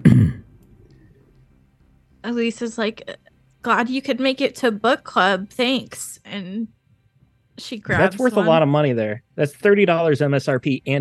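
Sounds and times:
man clearing throat: 0:00.0 - 0:00.6
speech: 0:02.2 - 0:06.8, 0:07.6 - 0:10.9.

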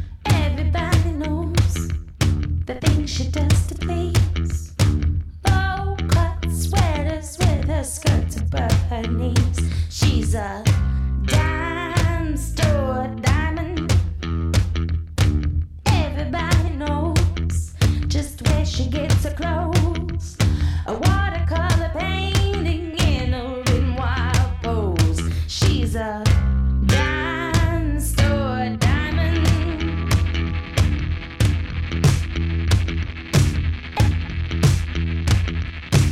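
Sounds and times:
person singing: 0:00.0 - 0:01.9, 0:05.5 - 0:13.9, 0:15.9 - 0:26.3, 0:26.9 - 0:30.4
rock song with full band: 0:00.0 - 0:16.6, 0:17.2 - 0:36.1
speech: 0:02.7 - 0:04.6, 0:07.2 - 0:10.8.

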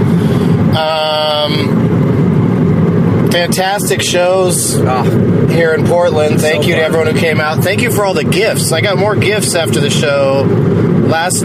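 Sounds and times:
Toyota Yaris compact car engine rumble heard from inside: 0:00.0 - 0:11.4
high tonal whine: 0:00.0 - 0:11.4
road noise inside a Toyota Yaris compact car: 0:00.0 - 0:11.4
speech: 0:00.8 - 0:01.1, 0:03.4 - 0:11.4.

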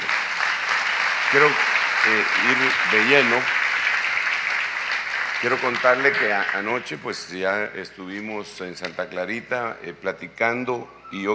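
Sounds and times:
audience applauding: 0:00.0 - 0:07.0
speech: 0:01.3 - 0:03.6, 0:05.4 - 0:11.3.

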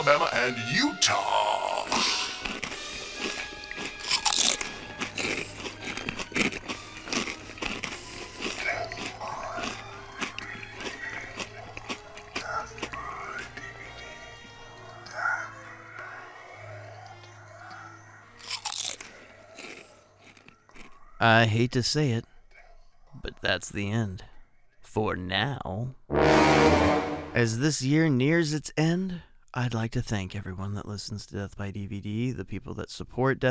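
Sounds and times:
speech: 0:00.0 - 0:02.2, 0:21.2 - 0:22.3, 0:23.4 - 0:24.3, 0:25.0 - 0:33.4
crisp snack being bitten and chewed: 0:01.8 - 0:15.2, 0:16.9 - 0:21.2.

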